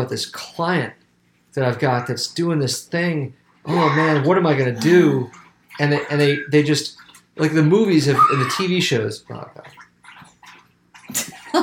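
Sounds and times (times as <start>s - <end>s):
speech: 0.0s - 9.8s
dog lapping water: 3.7s - 11.6s.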